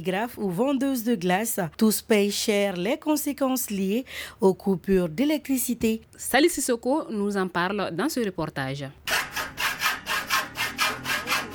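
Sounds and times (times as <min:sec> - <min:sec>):
speech: 0:00.0 - 0:09.1
saw cutting in a welding workshop in Bamako, Mali: 0:09.1 - 0:11.5.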